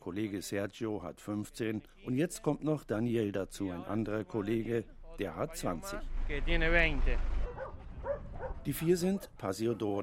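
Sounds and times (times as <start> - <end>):
speech: 0.1 - 7.4, 8.6 - 10.0
dogs barking and yipping: 7.4 - 9.4.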